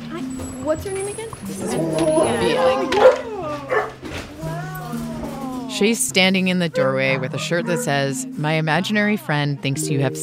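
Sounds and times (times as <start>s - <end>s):
speech: 0.7s - 3.0s, 5.8s - 10.2s
dogs barking and yelping excitedly: 0.8s - 5.5s, 6.4s - 8.2s.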